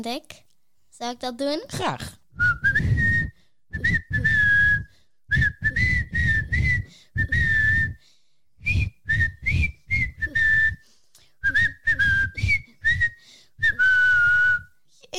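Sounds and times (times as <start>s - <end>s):
speech: 0.0s - 0.4s, 1.0s - 2.5s
person whistling a simple children's song melody: 2.4s - 8.0s, 8.6s - 14.8s.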